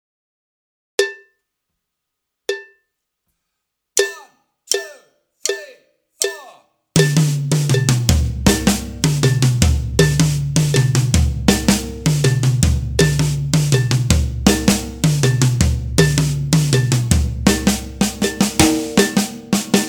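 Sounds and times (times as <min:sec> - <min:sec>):
drum duet: 0:04.0 - 0:19.8.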